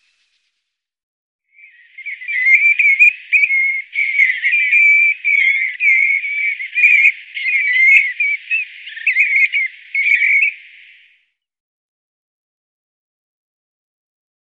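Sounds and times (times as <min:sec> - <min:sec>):
European golden plover whistling: 0:01.6 - 0:11.0.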